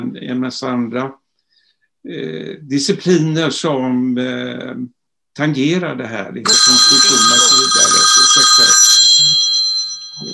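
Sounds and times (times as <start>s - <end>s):
speech: 0.0s - 1.2s, 2.0s - 7.4s
telephone ringing with a bright electronic tone: 6.5s - 10.3s.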